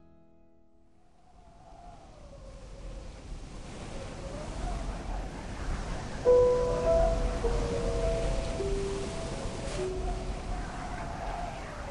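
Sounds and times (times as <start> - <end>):
ocean waves crashing: 3.0 - 11.8
sustained droning musical tones: 6.3 - 11.8.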